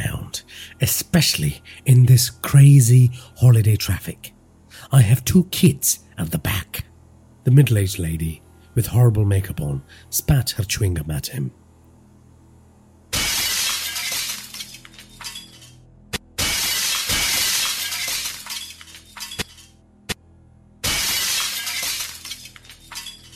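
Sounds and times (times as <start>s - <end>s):
speech: 0.8s - 11.6s
car glass shattering as a steel pipe smashes into an imported car: 13.2s - 15.7s, 16.4s - 19.5s, 20.8s - 23.3s
glass shards tinkling: 13.3s - 15.8s, 16.6s - 19.7s, 21.0s - 23.3s.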